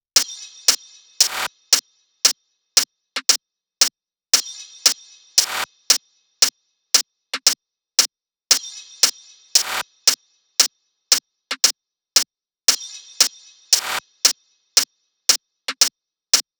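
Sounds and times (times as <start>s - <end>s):
hi-hat drum loop: 0.0s - 2.4s, 3.2s - 3.4s, 4.4s - 6.6s, 7.4s - 7.6s, 8.5s - 16.5s.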